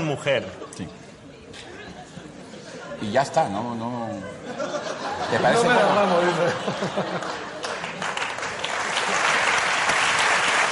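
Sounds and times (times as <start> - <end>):
speech: 0.1 - 1.8, 3.0 - 7.5
laughter: 1.6 - 3.1, 4.2 - 8.0
audience applause: 6.8 - 10.7.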